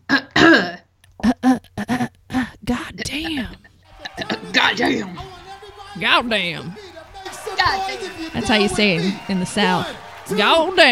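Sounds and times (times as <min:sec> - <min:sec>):
person clearing throat: 0:00.1 - 0:02.1
laughter: 0:03.9 - 0:10.9
speech: 0:06.0 - 0:06.8, 0:07.6 - 0:10.9.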